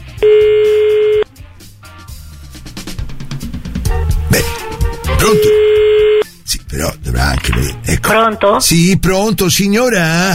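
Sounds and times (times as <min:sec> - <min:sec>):
speech: 0:00.2 - 0:00.5, 0:05.2 - 0:05.7, 0:06.8 - 0:10.3
ringback tone on an outgoing phone call to Tuscany: 0:00.2 - 0:01.2, 0:05.2 - 0:06.3.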